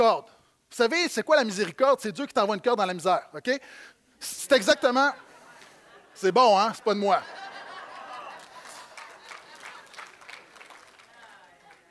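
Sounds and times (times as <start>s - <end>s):
speech: 0.0s - 5.2s, 6.2s - 7.4s
audience laughter: 4.6s - 11.5s
live audience applauding: 7.6s - 11.8s.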